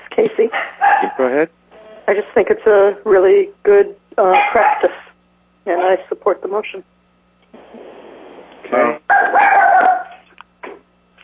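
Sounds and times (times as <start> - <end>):
speech: 0.2 - 5.0, 5.6 - 6.9, 8.6 - 9.1
dog barking and yipping: 0.5 - 1.3, 4.3 - 5.0, 9.1 - 10.3.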